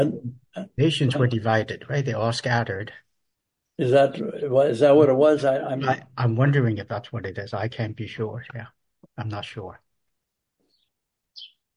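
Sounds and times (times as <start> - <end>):
speech: 0.0 - 3.0, 3.8 - 9.8
birds chirping: 10.7 - 11.7.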